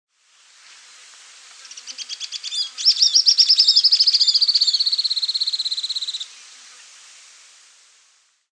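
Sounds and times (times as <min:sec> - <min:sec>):
Grey elaenia Myiopagis caniceps calling with high falling trill: 0:01.6 - 0:06.3.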